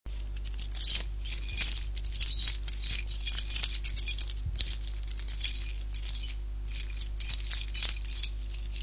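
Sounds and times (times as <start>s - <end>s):
keys jingling: 0.1s - 8.8s.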